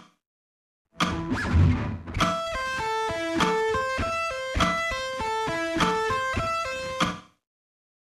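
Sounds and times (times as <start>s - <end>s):
slow guitar sweep picking: 1.0s - 7.0s.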